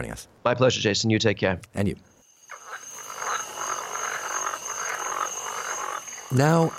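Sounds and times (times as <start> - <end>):
speech: 0.0 - 2.6, 6.3 - 6.7
dense chorus of frogs croaking in a swamp: 2.1 - 6.7
thin high-pitched whine: 2.2 - 6.7.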